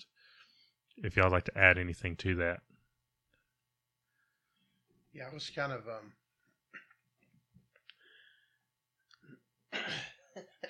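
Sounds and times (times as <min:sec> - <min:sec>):
speech: 0:01.0 - 0:02.7, 0:05.2 - 0:06.2
person coughing: 0:09.3 - 0:10.6.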